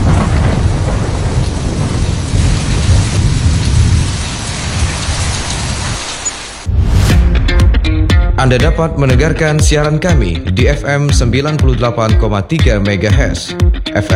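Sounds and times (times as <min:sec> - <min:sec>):
heavy rain during a storm: 0:00.0 - 0:07.0
deep thunder rumbling: 0:00.0 - 0:10.8
speech: 0:08.4 - 0:14.1.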